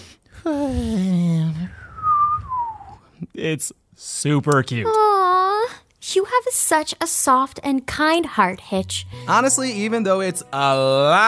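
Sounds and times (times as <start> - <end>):
speech: 0.4 - 1.1, 3.4 - 5.0, 6.1 - 11.2
person imitating the nose whistle of a sleeping small green dragon: 1.6 - 3.0.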